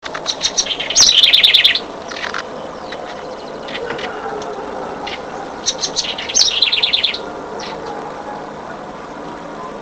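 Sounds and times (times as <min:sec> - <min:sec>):
House wren song of fast high twittered notes: 0:00.0 - 0:09.8
House wren chirps: 0:00.2 - 0:04.2, 0:05.0 - 0:08.6.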